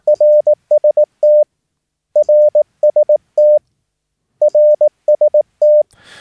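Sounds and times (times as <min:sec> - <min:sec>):
single-pitched Morse code tone keying an RST signal report: 0:00.0 - 0:01.5, 0:02.2 - 0:03.6, 0:04.4 - 0:05.8.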